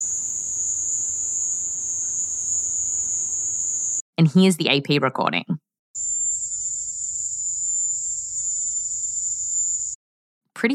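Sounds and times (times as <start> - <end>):
cricket trilling echoing in a room: 0.0 - 4.0, 6.0 - 10.0
speech: 4.2 - 5.6.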